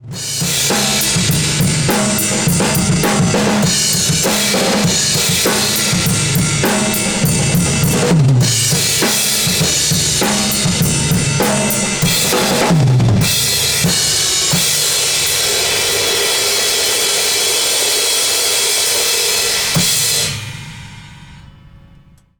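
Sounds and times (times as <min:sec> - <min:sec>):
drums from overhead microphone: 0:00.0 - 0:22.3.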